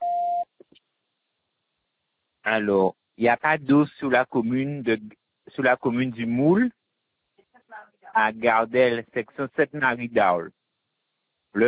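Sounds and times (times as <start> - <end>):
answering machine beep before recording a message: 0.0 - 0.4
speech: 2.5 - 6.8, 8.2 - 10.6.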